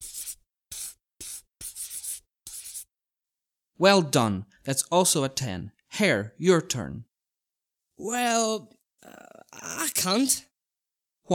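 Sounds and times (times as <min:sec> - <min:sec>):
yellow pencil colouring on paper: 0:00.0 - 0:02.9
speech: 0:03.8 - 0:07.1, 0:08.0 - 0:10.5.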